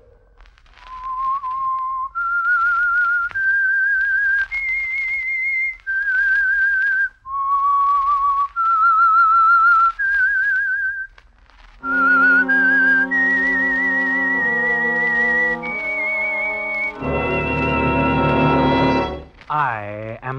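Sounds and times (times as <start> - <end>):
solo whistled theme melody: 0.8 - 11.1, 11.8 - 19.3
orchestra playing full chords: 11.8 - 19.3.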